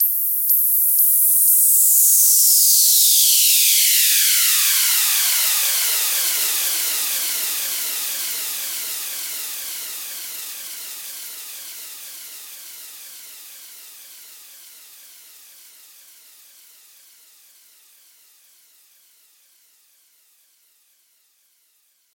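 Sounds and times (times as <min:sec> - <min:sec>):
filter sweep: 0:00.0 - 0:09.0.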